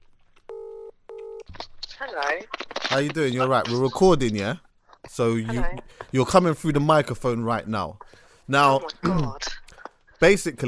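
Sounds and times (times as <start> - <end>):
phone dialing tones: 0.5 - 1.5
speech: 2.0 - 9.6, 10.2 - 10.6.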